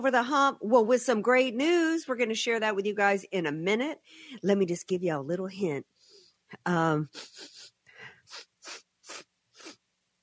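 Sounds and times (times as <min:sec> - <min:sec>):
speech: 0:00.0 - 0:05.9, 0:06.5 - 0:07.6
quick breathy sniffs through the nose: 0:07.1 - 0:09.8.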